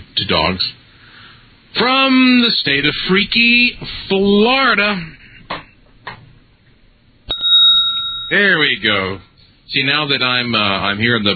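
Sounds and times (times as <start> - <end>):
speech: 0.3 - 0.8, 1.7 - 5.6, 8.3 - 11.3
bell sound effect ding: 7.3 - 8.6.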